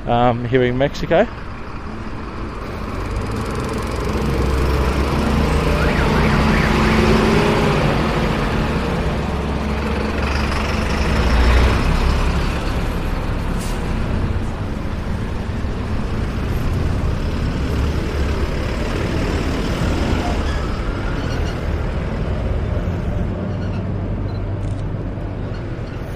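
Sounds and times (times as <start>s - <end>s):
speech: 0.0s - 2.0s
buses and other large vehicles rumbling past: 0.0s - 26.1s
heavy street traffic in Mexico: 0.0s - 26.1s
bus air brake releasing: 13.5s - 14.0s.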